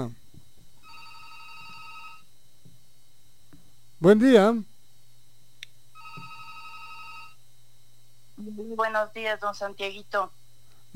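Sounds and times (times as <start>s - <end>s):
speech: 0.0s - 0.2s, 4.0s - 4.7s, 8.5s - 10.9s
low constant hum: 0.0s - 10.9s
telephone ringing with a steady electronic tone: 0.8s - 2.3s, 6.0s - 7.4s.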